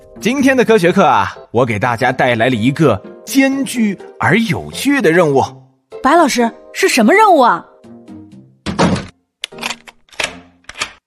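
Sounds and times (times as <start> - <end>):
speech: 0.2 - 7.7
classroom door being locked: 8.6 - 11.0.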